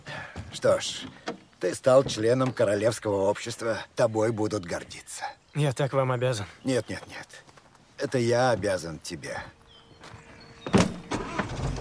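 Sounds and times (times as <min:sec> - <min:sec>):
speech: 0:00.6 - 0:07.4, 0:08.0 - 0:09.6
car engine rumbling as people get in and drive away: 0:10.7 - 0:11.7.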